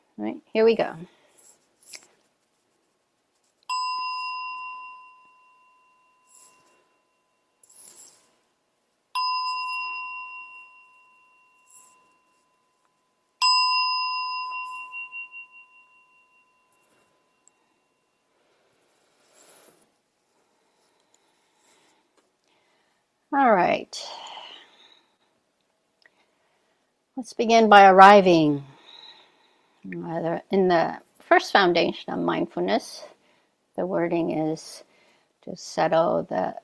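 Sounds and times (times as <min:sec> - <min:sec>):
speech: 0:00.2 - 0:01.2, 0:27.2 - 0:28.7, 0:29.8 - 0:33.1, 0:33.8 - 0:36.6
meditation bell ringing in a quiet room: 0:03.7 - 0:19.5.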